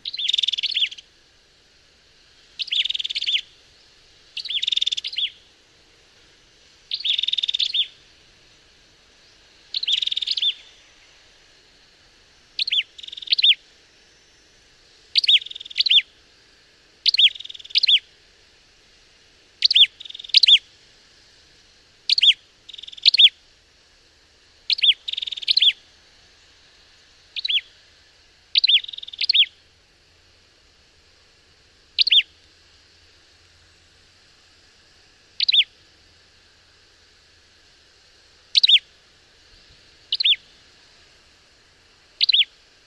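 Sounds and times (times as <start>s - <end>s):
ashy tailorbird calls in Malaysia: 0.0s - 1.1s, 2.6s - 3.5s, 4.4s - 5.5s, 6.9s - 8.0s, 9.7s - 11.0s, 12.6s - 13.6s, 15.2s - 16.1s, 17.0s - 18.0s, 19.6s - 20.6s, 22.1s - 23.3s, 24.7s - 25.8s, 27.4s - 27.7s, 28.6s - 29.6s, 32.0s - 32.3s, 35.4s - 35.7s, 38.6s - 38.9s, 40.1s - 40.5s, 42.2s - 42.5s.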